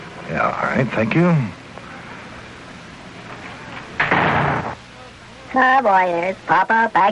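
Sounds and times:
speech: 0.3s - 1.6s, 5.6s - 7.0s
shop door swinging open with a rattle: 3.8s - 4.8s.

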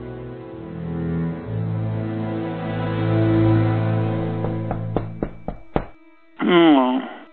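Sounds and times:
sustained low musical drone: 0.0s - 7.3s
knocking on a door: 4.2s - 6.0s
person speaking: 6.4s - 7.3s.

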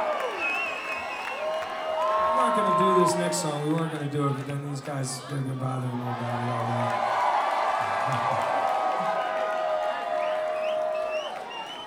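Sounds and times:
whoops and whistles: 0.0s - 3.2s, 10.0s - 11.8s
audience yelling and cheering: 0.0s - 11.8s
speech: 3.0s - 7.1s, 8.0s - 8.6s.

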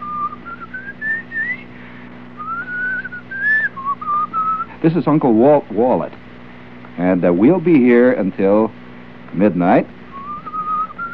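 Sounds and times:
man whistling a short wandering melody: 0.0s - 1.7s, 2.4s - 4.7s, 10.1s - 11.1s
low steady hum: 0.0s - 11.1s
speech: 4.8s - 6.2s, 7.0s - 10.0s.

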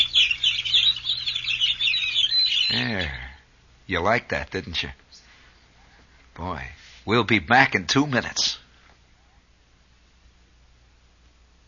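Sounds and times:
dense flock of birds chirping and twittering: 0.0s - 3.4s
faint low hum: 0.0s - 11.6s
speech: 3.9s - 5.0s, 6.4s - 8.6s.

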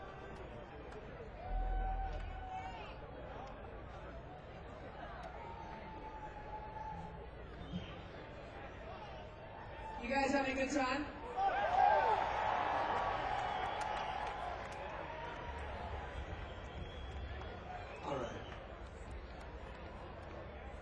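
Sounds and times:
young festival crowd cheering and whooping for a band: 1.2s - 3.4s, 4.9s - 8.0s, 8.9s - 10.1s, 11.2s - 20.2s
speech: 10.1s - 11.1s.

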